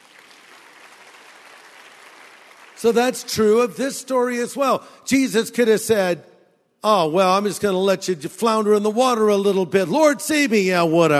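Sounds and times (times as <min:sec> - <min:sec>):
audience applause: 0:00.0 - 0:03.2
speech: 0:02.8 - 0:11.1.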